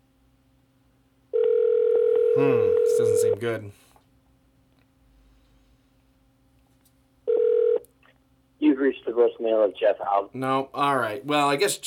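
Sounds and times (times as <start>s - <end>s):
telephone ringback tone during a call: 1.3s - 3.3s, 7.3s - 7.8s
speech: 2.4s - 3.9s, 9.1s - 11.8s.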